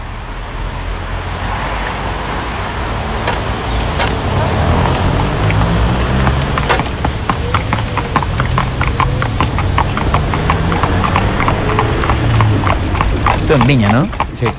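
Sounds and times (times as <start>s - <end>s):
low rumble of street traffic in Viña: 0.0s - 14.5s
horse hooves clip-clopping pulling a victoria carriage in Viña: 3.0s - 14.5s
speech: 13.5s - 14.5s.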